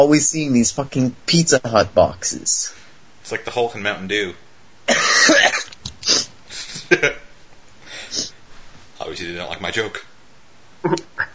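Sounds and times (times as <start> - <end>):
speech: 0.0 - 5.6, 6.9 - 7.2, 9.1 - 10.1, 10.8 - 11.2
harsh rasping cough fit: 4.9 - 6.9.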